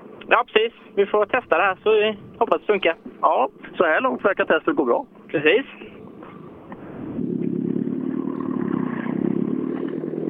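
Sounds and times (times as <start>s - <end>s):
speech: 0.3s - 5.9s
engine revving at high RPM: 5.8s - 10.2s.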